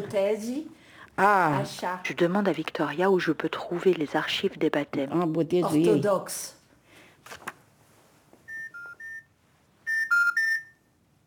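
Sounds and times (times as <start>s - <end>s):
speech: 0.0s - 6.6s, 7.2s - 7.5s
electronic telephone beeps as a number is dialed: 8.5s - 9.3s, 9.9s - 10.8s.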